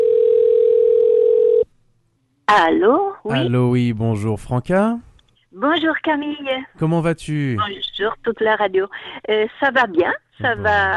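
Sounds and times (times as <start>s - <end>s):
telephone dial tone as a call is placed: 0.0s - 1.6s
speech: 2.5s - 10.9s.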